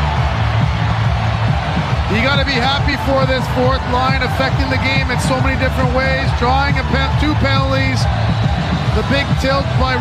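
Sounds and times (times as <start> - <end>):
hockey arena crowd cheering after a goal: 0.0 - 9.9
speech: 2.3 - 8.4, 9.0 - 9.9.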